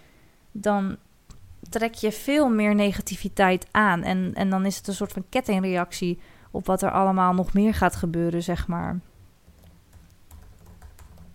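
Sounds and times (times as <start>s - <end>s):
low steady hum: 0.0s - 11.3s
speech: 0.6s - 1.1s, 1.7s - 9.1s
fingers typing on a laptop keyboard: 9.4s - 11.3s.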